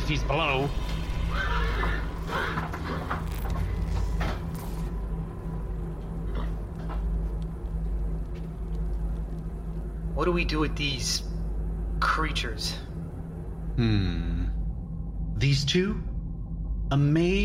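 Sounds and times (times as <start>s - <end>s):
low mechanical rumble: 0.0s - 17.4s
speech: 0.1s - 3.4s, 10.2s - 11.3s, 12.0s - 12.8s, 13.8s - 14.3s, 15.4s - 16.1s, 16.9s - 17.4s
horses neighing: 1.1s - 3.4s.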